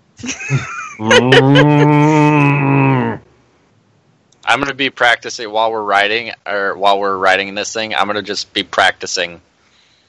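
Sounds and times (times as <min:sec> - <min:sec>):
speech: 0:00.2 - 0:02.1, 0:04.5 - 0:09.5
laughter: 0:00.2 - 0:03.0
person imitating an ox's moo: 0:01.0 - 0:03.3
person making a short vocal sound: 0:01.0 - 0:03.3.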